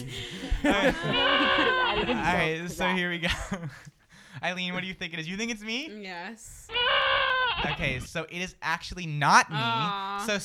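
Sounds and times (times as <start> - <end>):
laughter: 0.0 - 3.9, 9.5 - 10.4
speech: 0.0 - 7.0, 7.6 - 10.4
goat bleating: 1.1 - 2.4, 6.7 - 8.1.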